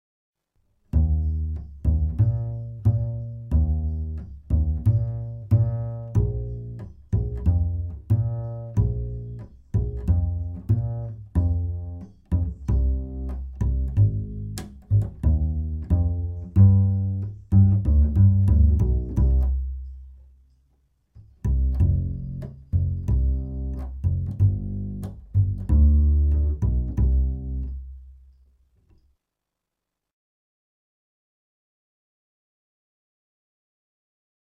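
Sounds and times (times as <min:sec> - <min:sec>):
double bass: 0:00.9 - 0:28.6.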